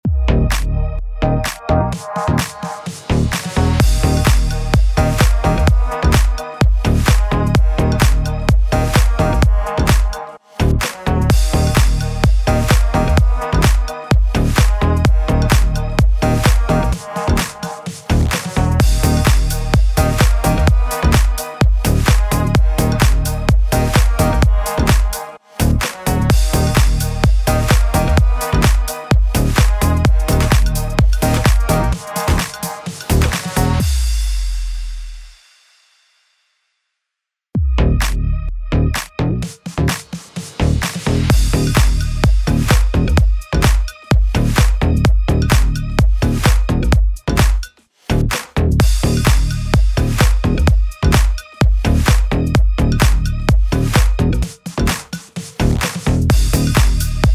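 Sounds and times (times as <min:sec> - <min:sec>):
slap house music in D sharp minor: 0:00.0 - 0:34.6, 0:37.6 - 0:57.3.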